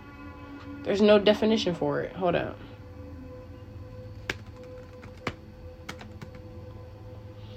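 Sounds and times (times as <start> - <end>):
steady low hum: 0.0 - 7.5
speech: 0.8 - 2.7
typing on a computer keyboard: 4.2 - 6.5.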